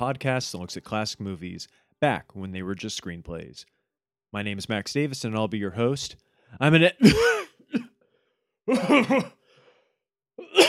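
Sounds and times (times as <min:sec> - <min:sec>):
speech: 0:00.0 - 0:07.9, 0:08.7 - 0:09.4
person coughing: 0:07.0 - 0:08.0, 0:08.7 - 0:09.4, 0:10.4 - 0:10.6.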